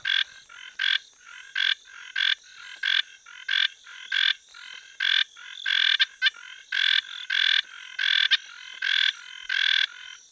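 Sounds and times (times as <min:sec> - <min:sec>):
Hylidae Scinax elaeochrous tree frog: 0:00.0 - 0:10.2.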